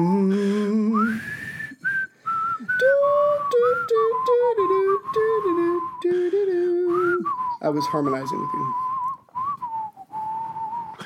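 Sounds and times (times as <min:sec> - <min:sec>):
two people whistling a simple tune over a Skype call: 0:00.0 - 0:11.0
short breaths: 0:00.3 - 0:02.6, 0:10.9 - 0:11.0
speech: 0:07.7 - 0:08.9.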